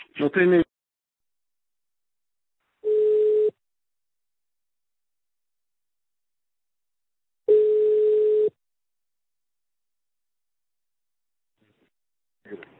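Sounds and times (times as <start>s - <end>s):
telephone ringback tones as a call is placed: 2.8s - 3.6s, 7.5s - 8.6s
faint voice: 12.5s - 12.7s.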